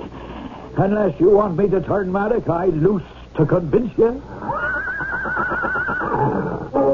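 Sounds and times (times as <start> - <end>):
speech: 0.8 - 4.3
huge horse neighing angrily: 4.4 - 6.8
harsh sustained snorting neigh of a horse: 5.0 - 6.8.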